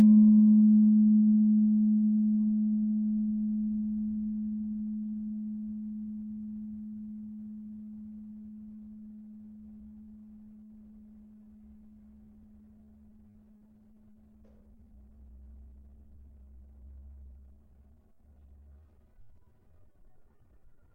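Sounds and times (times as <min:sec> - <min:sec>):
slentem note on tuned gravity harps: 0:00.0 - 0:12.3.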